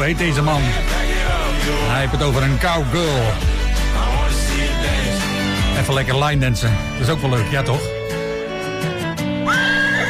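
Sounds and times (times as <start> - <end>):
speech: 0.0 - 3.6, 5.8 - 7.9
music: 0.0 - 10.0
horse neighing: 9.5 - 10.0.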